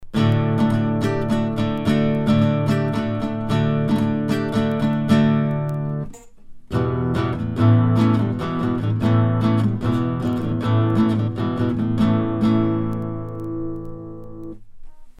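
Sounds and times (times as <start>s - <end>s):
guitar recorded with an omnidirectional condenser microphone: 0.0s - 15.1s.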